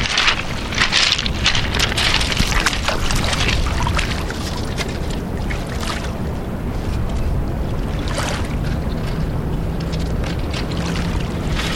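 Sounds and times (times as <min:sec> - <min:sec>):
running water splashing as an ink drawing is rinsed: 0:00.0 - 0:11.7.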